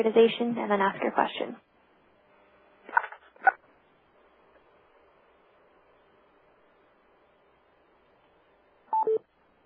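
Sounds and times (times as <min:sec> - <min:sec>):
speech: 0:00.0 - 0:01.7
telephone keypad tones dialing on a phone line: 0:08.9 - 0:09.2.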